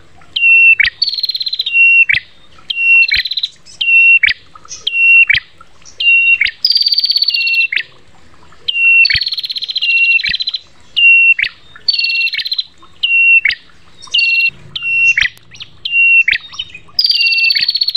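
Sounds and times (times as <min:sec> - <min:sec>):
prinia singing: 0:00.4 - 0:07.9, 0:08.7 - 0:17.9
faint clicks: 0:15.2 - 0:15.7.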